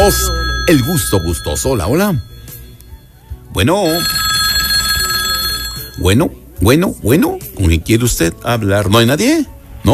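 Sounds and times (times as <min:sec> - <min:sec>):
speech: 0:00.0 - 0:02.3, 0:03.6 - 0:04.2, 0:06.0 - 0:09.9
telephone ringing for an incoming call during a radio phone-in: 0:00.0 - 0:06.3.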